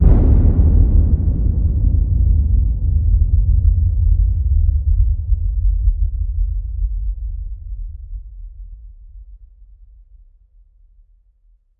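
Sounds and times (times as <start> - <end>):
low hit: 0.0 - 6.1.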